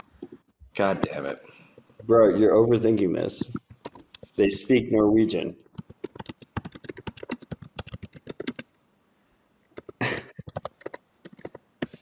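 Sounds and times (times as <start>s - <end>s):
speech: 0.2s - 3.6s, 4.4s - 5.6s
typing on a computer keyboard: 3.4s - 4.4s, 5.8s - 8.6s, 9.8s - 11.9s.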